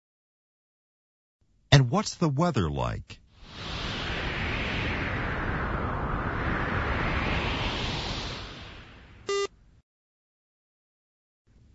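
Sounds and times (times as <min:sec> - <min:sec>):
speech: 0:01.9 - 0:03.2
steady loud wind roaring: 0:03.4 - 0:09.3
short electronic beep: 0:09.3 - 0:09.5.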